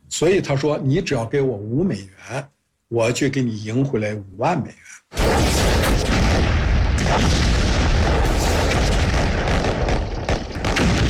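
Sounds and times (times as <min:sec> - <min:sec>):
speech: 0:00.2 - 0:06.1, 0:07.0 - 0:07.6
artillery fire during an amphibious landing at Incheon harbor: 0:05.2 - 0:11.0
heavy explosions during an amphibious landing at Incheon harbor: 0:05.2 - 0:11.0.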